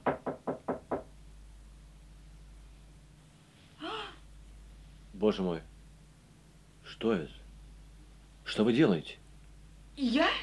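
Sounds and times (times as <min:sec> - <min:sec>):
soft knocking on a door: 0:00.0 - 0:01.1
speech: 0:05.2 - 0:05.7, 0:07.0 - 0:07.4, 0:08.5 - 0:09.2, 0:10.0 - 0:10.4.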